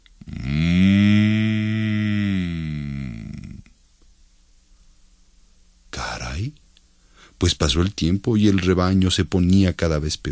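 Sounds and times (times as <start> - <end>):
yawning bull giving a long deep moo: 0.2 - 3.7
speech: 7.4 - 10.3.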